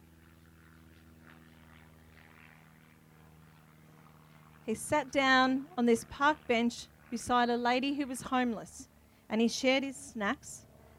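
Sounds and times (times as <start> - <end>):
propeller airplane droning overhead: 0.0 - 10.9
speech: 4.7 - 10.7.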